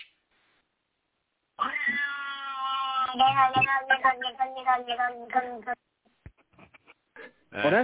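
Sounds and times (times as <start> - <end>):
cat yowling meow: 1.6 - 5.7
speech: 3.2 - 5.9, 7.5 - 7.8.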